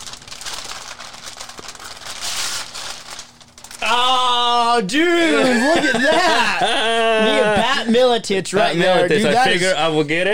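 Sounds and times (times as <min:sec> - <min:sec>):
Christmas wrapping paper being torn open and crinkled: 0:00.0 - 0:04.2
speech: 0:03.8 - 0:04.0, 0:04.8 - 0:10.3
laughter: 0:05.3 - 0:08.0.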